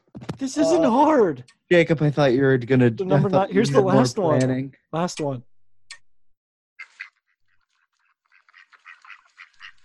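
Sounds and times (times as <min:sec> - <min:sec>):
speech: 0:00.4 - 0:05.5
ducks quacking: 0:06.8 - 0:09.8.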